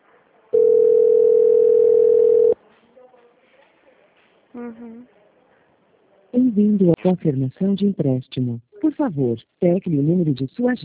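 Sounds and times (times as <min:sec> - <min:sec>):
telephone ringback tone as an outgoing call connects: 0:00.6 - 0:02.6
speech: 0:04.7 - 0:05.2, 0:06.4 - 0:10.8.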